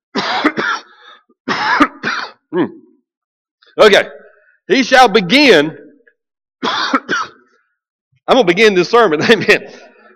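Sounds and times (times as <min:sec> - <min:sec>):
person clearing throat: 0:00.1 - 0:00.9, 0:01.5 - 0:03.0, 0:06.6 - 0:07.4
person coughing: 0:00.1 - 0:03.0, 0:06.6 - 0:07.5
speech: 0:02.5 - 0:02.8, 0:03.8 - 0:05.8, 0:08.3 - 0:09.9.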